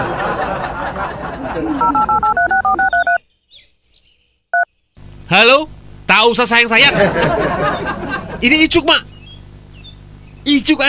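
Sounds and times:
laughter: 0:00.0 - 0:02.7, 0:06.8 - 0:08.7
speech: 0:01.6 - 0:02.4, 0:05.3 - 0:09.0, 0:10.4 - 0:10.8
mobile phone keypad two-tone dialing beeps: 0:01.8 - 0:03.2.

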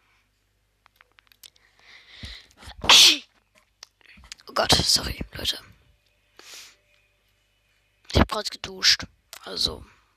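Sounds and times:
person sneezing: 0:02.7 - 0:03.4
speech: 0:04.6 - 0:05.8, 0:08.4 - 0:10.0.

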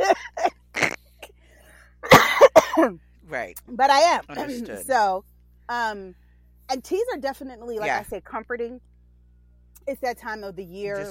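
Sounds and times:
person coughing: 0:00.0 - 0:01.0, 0:02.0 - 0:03.0
speech: 0:02.8 - 0:08.9, 0:09.8 - 0:11.0.

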